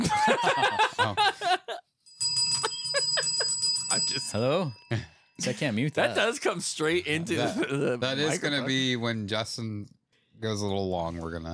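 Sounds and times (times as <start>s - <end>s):
person laughing or chuckling: 0.0s - 1.8s, 2.6s - 3.6s, 7.2s - 8.6s
small bell ringing: 2.0s - 6.2s
speech: 4.3s - 11.5s.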